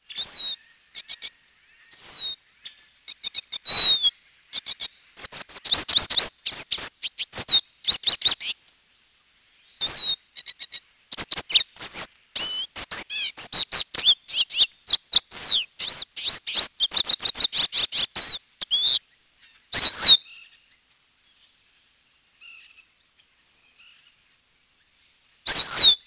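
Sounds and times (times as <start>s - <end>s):
lesser goldfinch calling: 0.0s - 1.3s, 1.9s - 8.6s, 9.8s - 20.6s, 25.5s - 26.0s.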